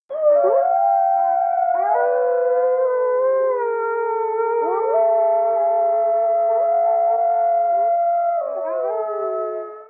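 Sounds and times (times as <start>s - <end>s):
distant wolves: 0.1s - 9.8s.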